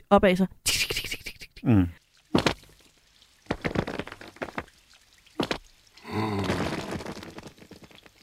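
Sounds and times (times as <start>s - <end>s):
water drips tapping: 2.0s - 8.2s.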